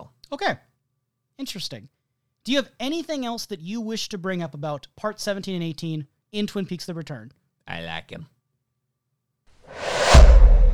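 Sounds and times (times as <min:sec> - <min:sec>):
speech: 0:00.3 - 0:00.7, 0:01.4 - 0:08.4
whoosh sound effect: 0:09.7 - 0:10.7
deep sustained rumble: 0:09.8 - 0:10.7.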